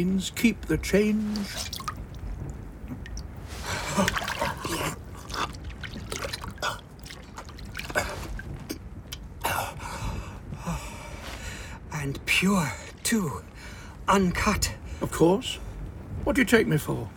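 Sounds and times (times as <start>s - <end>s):
speech: 0.0s - 1.8s, 12.4s - 13.5s, 14.1s - 15.6s, 16.2s - 17.1s
water trickling: 0.4s - 9.2s.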